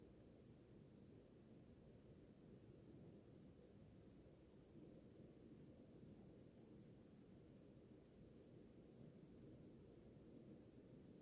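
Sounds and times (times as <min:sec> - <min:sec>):
cricket chorus in the early morning in a Mata Atlântica rainforest village: 0:00.0 - 0:11.2.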